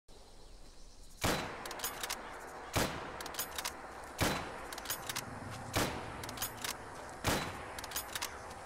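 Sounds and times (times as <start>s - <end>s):
Lee–Enfield rifle gunshot: 1.2s - 8.5s.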